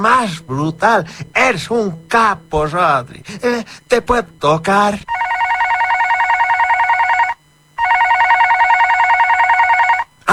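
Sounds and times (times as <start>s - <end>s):
speech: 0.0s - 5.2s
telephone ringing: 5.1s - 10.3s.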